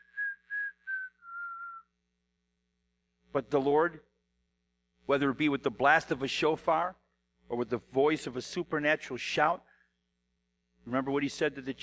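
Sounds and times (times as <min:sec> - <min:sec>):
little whistle notes: 0:00.0 - 0:01.9
speech: 0:03.4 - 0:04.1, 0:05.1 - 0:09.7, 0:10.8 - 0:11.8.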